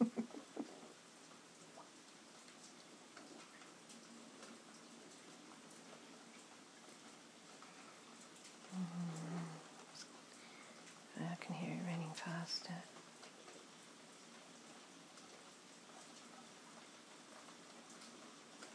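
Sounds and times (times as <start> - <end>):
short low sound: 0.0 - 1.0
heavy rain: 0.0 - 18.7.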